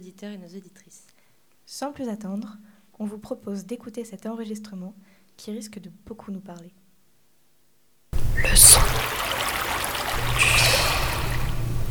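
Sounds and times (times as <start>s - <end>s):
speech: 0.0s - 1.1s, 1.7s - 6.8s
low steady hum: 8.2s - 11.8s
rushing water flowing through a city: 8.2s - 11.8s.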